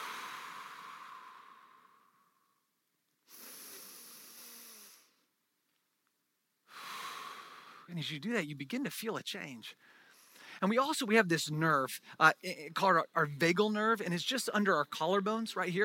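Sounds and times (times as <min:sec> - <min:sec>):
long slow deep breaths in through nose, out through mouth: 0:00.0 - 0:02.7, 0:03.3 - 0:05.3, 0:06.6 - 0:07.9, 0:09.7 - 0:10.6
speech: 0:07.9 - 0:10.0, 0:10.6 - 0:15.8.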